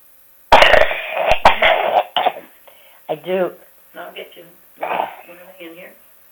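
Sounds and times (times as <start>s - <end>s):
harsh raspy coughing fit: 0.5s - 3.2s, 4.8s - 5.4s
speech: 3.2s - 6.3s.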